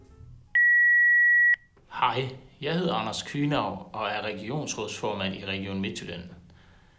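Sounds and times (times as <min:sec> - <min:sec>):
single steady electronic beep from a telephone answering machine: 0:00.6 - 0:01.6
speech: 0:02.0 - 0:06.4.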